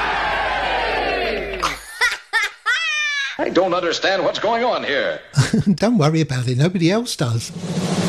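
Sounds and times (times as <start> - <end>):
crowd roaring and cheering: 0.0 - 2.1
laughter: 1.4 - 3.4, 5.4 - 5.9
speech: 3.5 - 7.9.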